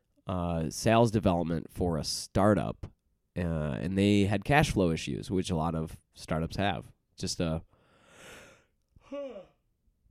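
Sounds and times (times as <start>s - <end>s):
speech: 0.3s - 7.7s
person yawning with a voiced groan: 9.0s - 9.6s.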